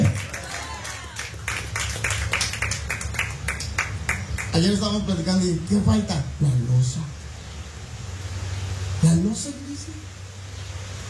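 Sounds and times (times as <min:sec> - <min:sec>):
crowd clapping in a reverberant room: 0:00.0 - 0:04.8
speech: 0:04.6 - 0:07.2, 0:09.1 - 0:10.2.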